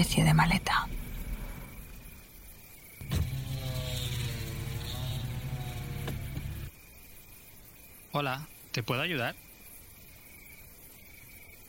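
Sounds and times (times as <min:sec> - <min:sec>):
speech: 0:00.0 - 0:01.0, 0:08.2 - 0:09.4
car engine rumbling while driving along a road: 0:00.0 - 0:06.7
electric motor whirring: 0:03.0 - 0:06.7.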